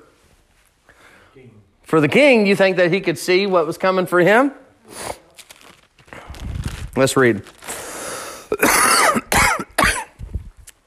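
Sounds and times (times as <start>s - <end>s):
speech: 1.4s - 5.2s, 7.0s - 7.6s, 8.5s - 8.9s
harsh broadband coughs: 8.5s - 10.2s.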